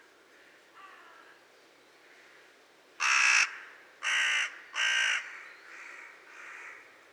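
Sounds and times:
carrion crow Corvus corone cawing: 0.4 - 1.3, 3.0 - 6.8.

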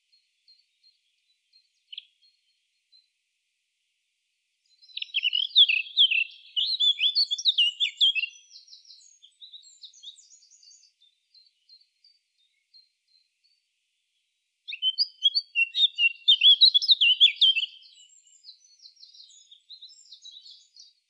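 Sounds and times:
Eurasian blackcap Sylvia atricapilla warbling song: 4.8 - 11.0, 14.7 - 21.0.

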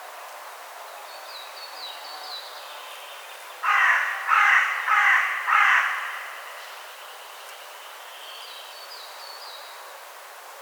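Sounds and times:
carrion crow Corvus corone cawing: 3.6 - 6.6.

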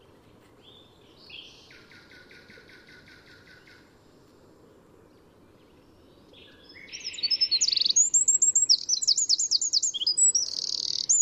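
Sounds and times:
Eurasian wren Troglodytes troglodytes singing: 0.0 - 11.2.

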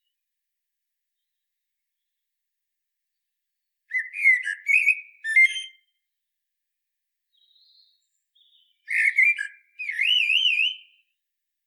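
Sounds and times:
common blackbird Turdus merula singing: 3.9 - 6.1, 7.3 - 11.2.

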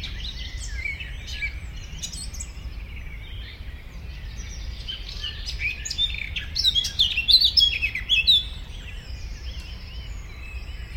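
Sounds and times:
Eurasian blackcap song: 0.0 - 10.9.

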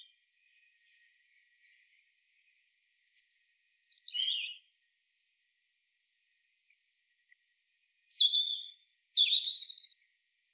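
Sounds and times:
European robin Erithacus rubecula song: 0.0 - 2.2, 3.0 - 4.7, 7.8 - 10.1.

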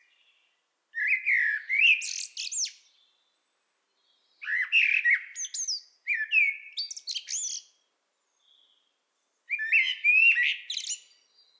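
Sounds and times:
common blackbird singing: 1.0 - 3.1, 4.1 - 7.7, 9.5 - 11.5.

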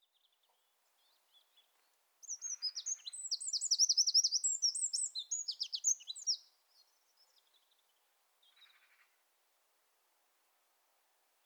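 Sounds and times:
Eurasian wren Troglodytes troglodytes song: 1.5 - 6.5.

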